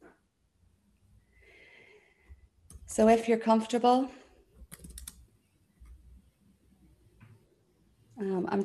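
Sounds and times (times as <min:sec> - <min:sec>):
speech: 0:02.9 - 0:04.2
computer keyboard typing: 0:04.6 - 0:05.3.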